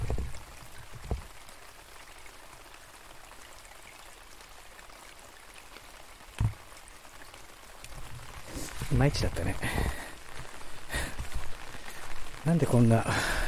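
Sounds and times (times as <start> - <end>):
small forest stream trickling: 0.0 - 13.4
sharp knocks: 6.4 - 6.6
speech: 9.0 - 10.0, 12.4 - 13.4.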